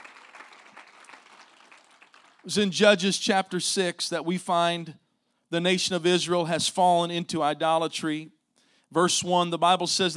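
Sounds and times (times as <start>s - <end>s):
audience clapping: 0.0s - 2.8s
speech: 2.4s - 10.1s.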